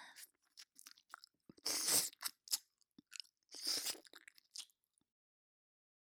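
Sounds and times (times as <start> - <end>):
wet chewing and crunching of something being eaten: 0.2 - 4.8.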